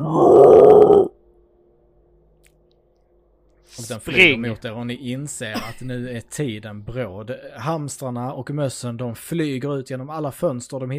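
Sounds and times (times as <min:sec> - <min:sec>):
speech: 0:00.0 - 0:00.3, 0:03.9 - 0:10.9
person imitating a loud raspy monster roar: 0:00.0 - 0:01.2.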